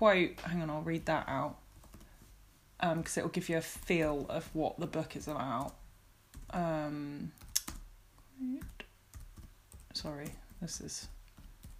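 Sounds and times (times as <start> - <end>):
speech: 0.0 - 1.6, 2.8 - 5.8, 6.5 - 7.5, 8.4 - 8.8, 10.0 - 11.2
slow one-finger typing on computer keyboard: 1.7 - 2.3, 5.3 - 6.6, 7.3 - 7.9, 8.6 - 11.7.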